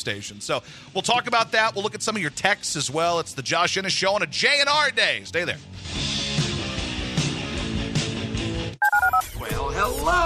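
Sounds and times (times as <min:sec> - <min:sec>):
speech: 0:00.0 - 0:06.2
music: 0:00.6 - 0:10.2
telephone keypad dialing tones as a phone is dialed: 0:08.8 - 0:09.2.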